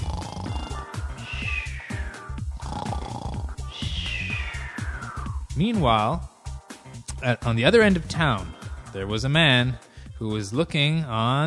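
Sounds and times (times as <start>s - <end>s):
person imitating loud snoring: 0.0s - 1.4s, 2.5s - 4.2s
speech: 5.6s - 6.3s, 7.2s - 11.4s.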